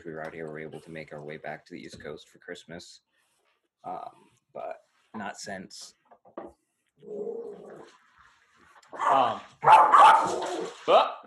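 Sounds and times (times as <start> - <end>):
speech: 0.0 - 3.1, 3.8 - 8.0, 8.9 - 11.2
several dogs barking and yipping excitedly: 9.0 - 10.8.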